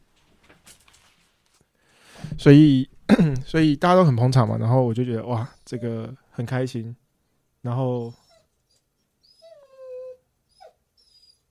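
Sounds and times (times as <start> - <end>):
speech: 2.4 - 7.0, 7.6 - 8.2
dog whimpering and crying at home: 5.6 - 6.1, 8.0 - 11.4
dog giving a sharp yelp: 8.2 - 11.4.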